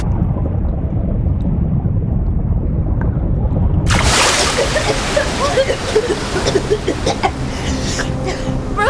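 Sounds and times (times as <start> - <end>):
low rumble of water: 0.0 - 8.8
ocean wave breaking over swimmers at a reef: 3.9 - 7.5.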